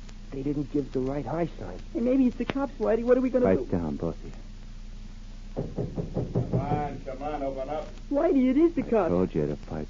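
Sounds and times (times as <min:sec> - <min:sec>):
faint steady hiss: 0:00.0 - 0:09.8
speech: 0:00.3 - 0:04.5, 0:05.6 - 0:09.8
knocking on a wooden door: 0:05.5 - 0:07.0.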